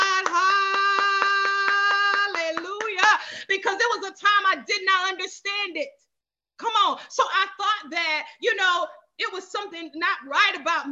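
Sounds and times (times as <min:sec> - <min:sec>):
hand claps: 0:00.0 - 0:03.2
speech: 0:03.3 - 0:06.0, 0:06.6 - 0:10.9.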